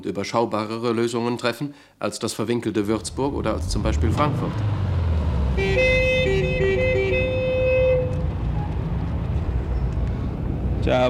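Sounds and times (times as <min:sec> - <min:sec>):
speech: 0:00.0 - 0:04.9, 0:10.8 - 0:11.0
dense road traffic in a city traffic jam in Frankfurt: 0:02.8 - 0:11.0
car horns honking in a city traffic jam in Frankfurt: 0:05.3 - 0:08.9.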